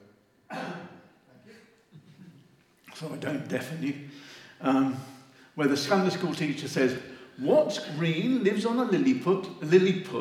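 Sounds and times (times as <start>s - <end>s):
person coughing: 0.5s - 1.6s
speech: 3.0s - 10.1s.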